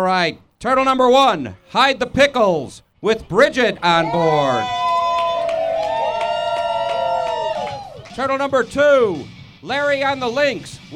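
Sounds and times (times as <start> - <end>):
speech: 0.0 - 4.8, 8.2 - 10.9
crowd cheering at a turtle race: 3.9 - 8.4
rhythmic clapping bursts: 4.5 - 9.0.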